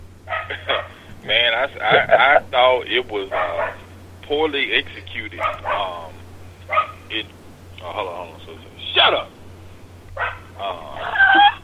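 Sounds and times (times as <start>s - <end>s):
steady low electrical hum: 0.0s - 11.6s
dog barking: 0.3s - 1.1s, 3.3s - 3.9s, 5.4s - 6.1s, 6.7s - 7.1s, 10.2s - 10.5s
laughter: 0.5s - 2.9s, 10.6s - 11.6s
speech: 1.3s - 6.2s, 7.1s - 9.3s.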